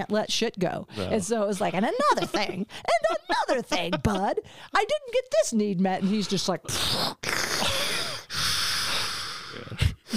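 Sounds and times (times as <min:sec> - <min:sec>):
speech: 0:00.0 - 0:07.3
voice imitating heavy rasping breathing inside a helmet: 0:06.0 - 0:10.1.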